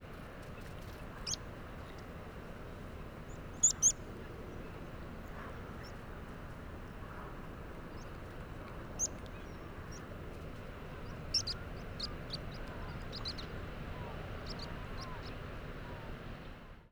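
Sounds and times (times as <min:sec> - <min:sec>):
migrant meadow pipit variable flight calls: 0:00.6 - 0:16.2.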